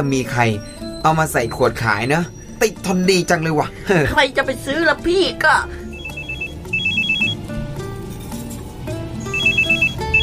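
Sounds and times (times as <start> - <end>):
speech: 0.0 - 5.8
mobile phone ringtone for an incoming call: 5.9 - 7.4, 9.3 - 10.2.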